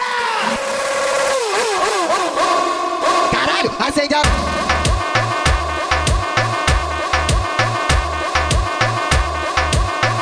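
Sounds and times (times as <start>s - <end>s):
engine revving: 0.2s - 3.3s, 4.2s - 10.2s.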